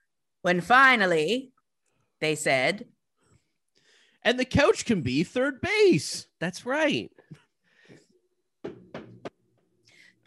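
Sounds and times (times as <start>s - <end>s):
speech: 0.4s - 1.5s, 2.2s - 2.9s, 4.2s - 7.3s
knocks on a door: 8.6s - 9.4s.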